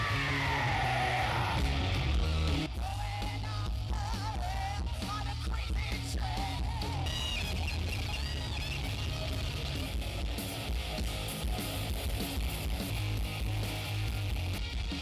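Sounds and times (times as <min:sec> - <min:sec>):
crowd yelling, whooping and screaming at a metal tribute night: 0:00.0 - 0:14.9.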